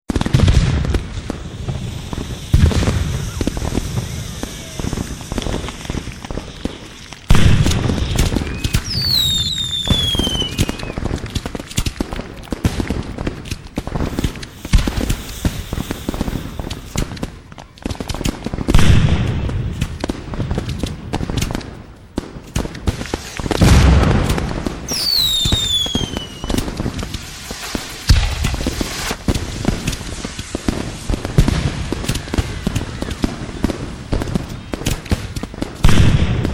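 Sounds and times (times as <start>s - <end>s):
New Year's Eve fireworks: 0.1s - 36.5s.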